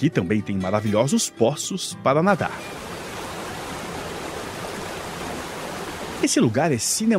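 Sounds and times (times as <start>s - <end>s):
speech: 0.0s - 2.8s, 6.2s - 7.1s
rushing falling water: 2.6s - 6.4s.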